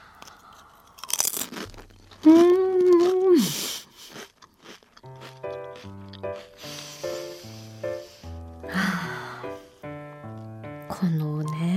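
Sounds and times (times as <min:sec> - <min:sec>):
thin lightly salted potato chip crunching: 0:00.0 - 0:07.1
light music: 0:05.1 - 0:11.7.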